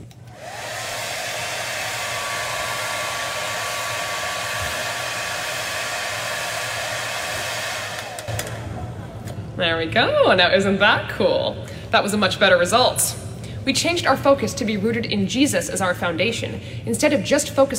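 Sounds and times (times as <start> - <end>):
hair dryer running: 0.2 - 8.8
hair dryer switch click: 7.9 - 8.6
speech: 9.6 - 17.7.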